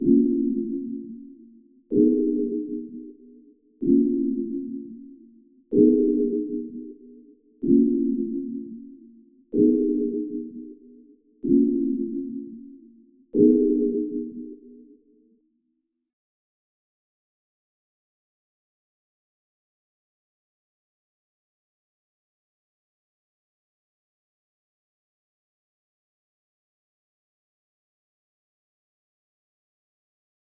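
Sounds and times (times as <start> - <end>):
126 BPM D sharp minor trap synth pad loop: 0.0 - 14.8.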